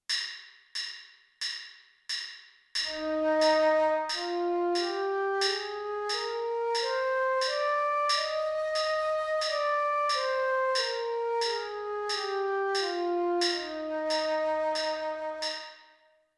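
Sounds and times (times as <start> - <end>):
flute playing an E flat major scale: 2.9 - 16.0.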